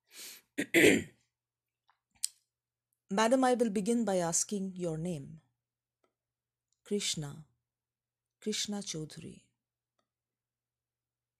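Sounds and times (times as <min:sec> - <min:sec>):
man clearing his throat: 0:00.6 - 0:01.1
speech: 0:00.6 - 0:01.1, 0:03.1 - 0:05.4, 0:06.9 - 0:07.5, 0:08.4 - 0:09.4.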